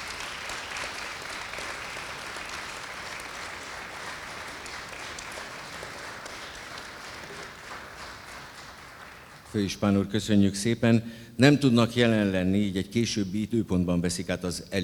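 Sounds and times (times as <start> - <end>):
audience applause for a zither band: 0.0 - 9.6
speech: 9.5 - 14.8.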